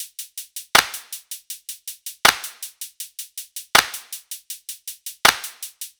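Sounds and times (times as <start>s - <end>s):
hi-hat drum loop: 0.0s - 5.9s
clap drum loop: 0.8s - 1.2s, 2.2s - 2.7s, 3.8s - 4.2s, 5.2s - 5.7s.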